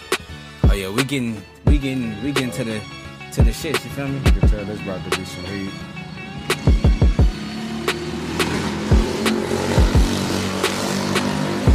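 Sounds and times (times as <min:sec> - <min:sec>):
speech: 0:00.8 - 0:06.6
cars driving fast outside with loud engine bursts: 0:04.2 - 0:11.7.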